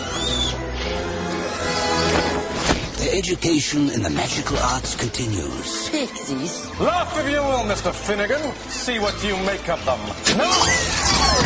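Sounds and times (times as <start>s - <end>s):
thin high bird call sweeping upward: 0.0s - 2.0s
speech: 3.2s - 11.4s.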